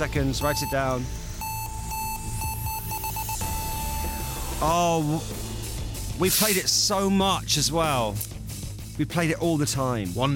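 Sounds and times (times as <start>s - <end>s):
speech: 0.0s - 1.2s, 4.6s - 5.4s, 6.2s - 8.3s, 9.0s - 10.3s
timer alarm beeping: 0.0s - 5.4s.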